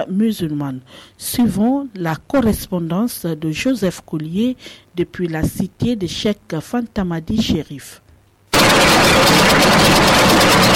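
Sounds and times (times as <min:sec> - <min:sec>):
speech: 0:00.1 - 0:08.0
sewing machines whirring in a busy tailor's workshop: 0:08.6 - 0:10.7.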